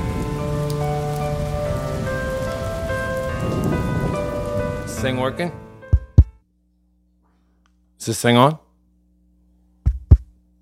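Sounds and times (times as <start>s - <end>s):
heavy rain: 0.0s - 5.8s
speech: 5.0s - 5.6s, 8.0s - 8.6s.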